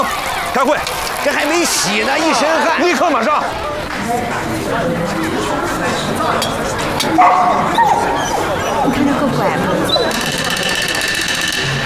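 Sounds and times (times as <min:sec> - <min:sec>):
chatter during a meeting: 0:00.0 - 0:11.8
speech: 0:00.6 - 0:10.2
laughter: 0:01.4 - 0:11.5
dog barking: 0:07.1 - 0:08.9
dog whimpering: 0:07.1 - 0:10.8.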